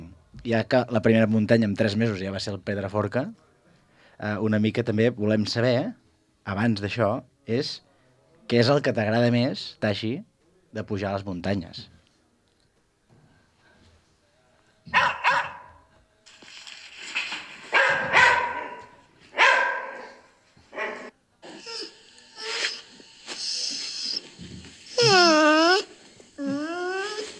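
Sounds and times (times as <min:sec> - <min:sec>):
speech: 0:00.4 - 0:03.4, 0:04.2 - 0:07.9, 0:08.5 - 0:11.9
dog barking: 0:14.9 - 0:15.8, 0:17.7 - 0:21.1
dog whining and yowling: 0:21.5 - 0:27.3.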